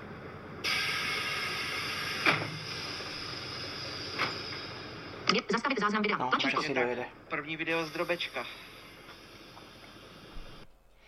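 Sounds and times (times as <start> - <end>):
broadband hiss of a moving bus interior: 0.6 - 4.8, 7.7 - 10.7
speech: 5.7 - 8.7.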